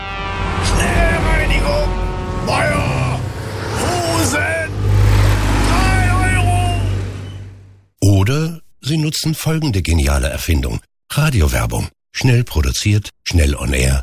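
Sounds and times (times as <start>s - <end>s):
trucks rumbling past: 0.0s - 7.9s
truck drivers shouting: 0.4s - 7.7s
speech: 9.1s - 14.0s.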